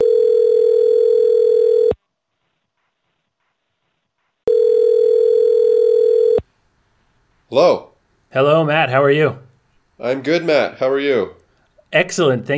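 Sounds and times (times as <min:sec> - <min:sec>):
telephone line tone while placing a call: 0:00.0 - 0:02.0, 0:04.5 - 0:06.4
speech: 0:07.5 - 0:09.4, 0:10.0 - 0:12.5.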